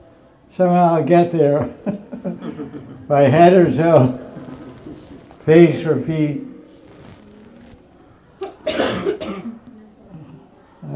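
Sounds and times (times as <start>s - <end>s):
speech: 0.5s - 4.3s, 5.5s - 6.5s
laughter: 1.5s - 5.2s
harsh coughs: 8.4s - 9.6s.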